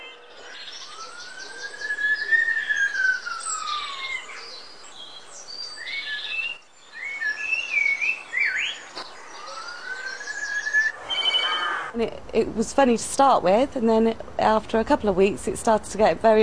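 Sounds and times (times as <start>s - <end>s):
blackbird in Weston-super-Mare mimicking a whistle, siren and mobile phone: 0.0s - 11.9s
speech: 12.0s - 16.4s.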